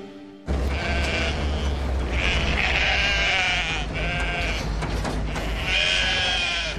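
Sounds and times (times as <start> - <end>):
sheep bleating: 0.5 - 6.7.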